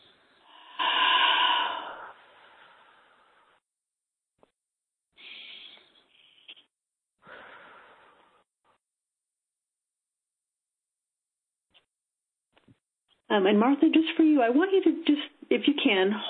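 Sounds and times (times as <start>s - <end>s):
deep breathing: 0.0s - 3.6s, 5.2s - 6.5s, 7.2s - 8.5s
speech: 13.3s - 16.2s.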